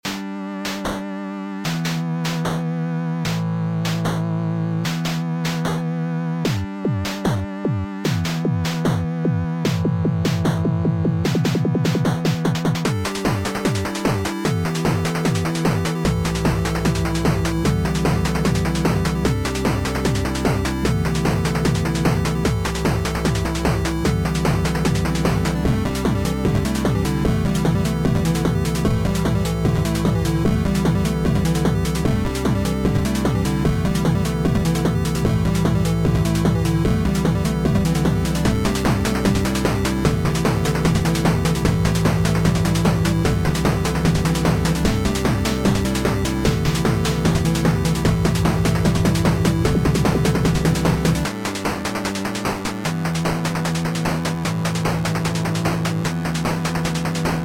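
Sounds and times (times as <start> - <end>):
music: 0.0 - 57.4.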